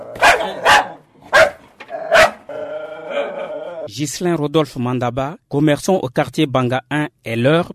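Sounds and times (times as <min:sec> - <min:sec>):
two caged guard dogs barking at arriving visitors: 0:00.0 - 0:03.8
speech: 0:03.9 - 0:07.7.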